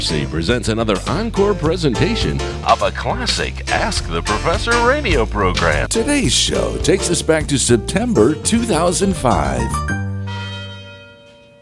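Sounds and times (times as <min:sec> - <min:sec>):
speech: 0:00.0 - 0:10.0
university tower chimes ringing: 0:06.0 - 0:11.6.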